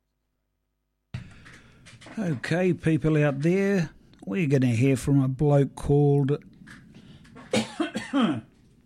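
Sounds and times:
speech: 2.1 - 6.8, 8.1 - 8.5
harsh throaty coughs: 7.4 - 8.5.

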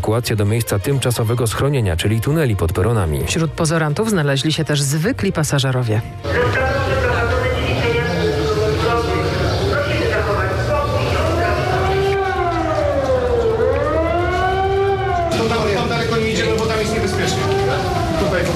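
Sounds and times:
speech: 0.0 - 6.8
air-raid sirens wailing across the city: 6.2 - 18.5
dense busy rumble: 6.2 - 18.5.

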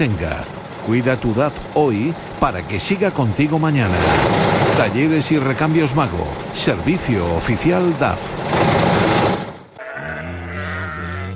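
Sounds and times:
speech: 0.0 - 8.4
sheep bleating: 9.8 - 11.3.

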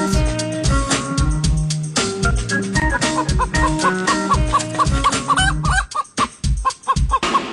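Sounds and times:
bouncy musical jingle for a morning news radio segment: 0.0 - 7.5
chicken clucks: 2.8 - 7.5.

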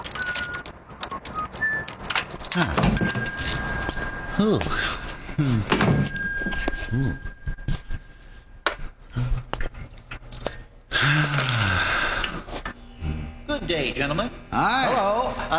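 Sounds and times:
small bell above a shop door jingling as the door opens: 0.0 - 8.6, 10.3 - 11.9
shuffling: 0.0 - 10.8, 12.3 - 12.8
speech: 2.6 - 3.0, 4.4 - 6.2, 6.9 - 7.3, 14.0 - 15.5.

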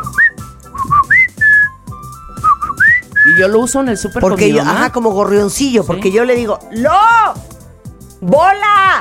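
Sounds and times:
two-note human signature whistle for calling one's partner: 0.0 - 4.1
speech: 3.4 - 7.4, 8.2 - 9.0.

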